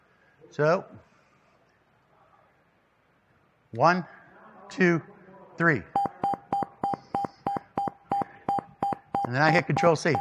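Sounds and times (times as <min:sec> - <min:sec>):
speech: 0:00.5 - 0:01.1, 0:03.7 - 0:06.0, 0:09.3 - 0:10.2
computer program alarm beeps: 0:06.0 - 0:10.2.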